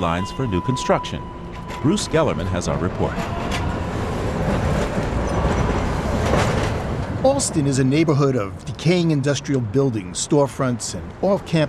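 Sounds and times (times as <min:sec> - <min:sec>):
speech: 0:00.0 - 0:03.6, 0:07.3 - 0:11.6
Green Line light rail subway train passing at street level: 0:00.0 - 0:08.6
traffic noise: 0:00.0 - 0:11.6.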